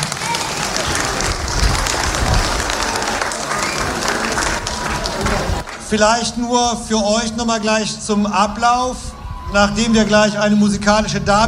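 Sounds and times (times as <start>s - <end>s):
audience applause: 0.0s - 6.0s
speech: 5.9s - 11.4s.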